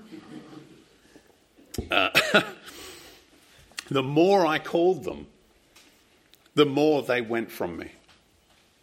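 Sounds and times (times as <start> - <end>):
speech: 1.8 - 2.6, 3.9 - 5.4, 6.6 - 8.0
harsh throaty cough: 1.8 - 2.8.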